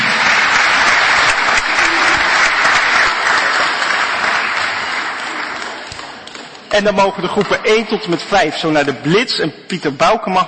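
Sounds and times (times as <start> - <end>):
large audience applauding: 0.0 - 7.5
speech: 6.8 - 10.4.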